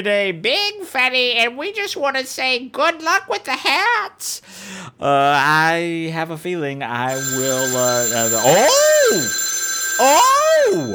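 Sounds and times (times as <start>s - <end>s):
speech: 0.0s - 9.4s, 10.0s - 10.9s
telephone ringing: 7.1s - 10.9s.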